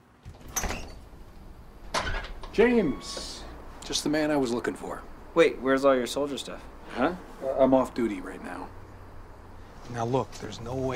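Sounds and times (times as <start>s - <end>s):
front door opening with rattling clunk: 0.2s - 1.1s, 1.8s - 2.6s
speech: 2.6s - 3.3s, 3.9s - 8.8s, 9.9s - 10.9s.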